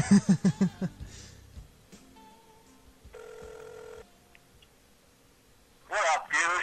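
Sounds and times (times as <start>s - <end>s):
burst of laughter: 0.0s - 1.0s
speech: 0.1s - 0.9s
telephone ringback tone as a phone call is placed: 3.1s - 4.1s.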